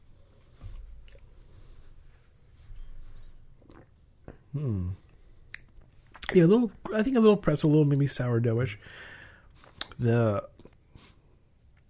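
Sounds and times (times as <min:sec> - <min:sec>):
low hiss: 0:00.0 - 0:11.8
person sipping beer with soft slurps: 0:03.6 - 0:04.0
person humming briefly: 0:04.5 - 0:05.0
speech: 0:04.5 - 0:05.0, 0:06.3 - 0:09.1, 0:10.0 - 0:10.5.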